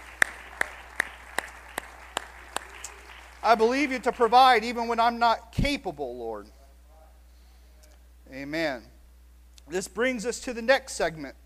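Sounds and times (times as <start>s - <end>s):
audience clapping in unison during a Bible lesson: 0.0s - 4.8s
speech: 3.4s - 6.6s, 8.3s - 8.9s, 9.7s - 11.4s.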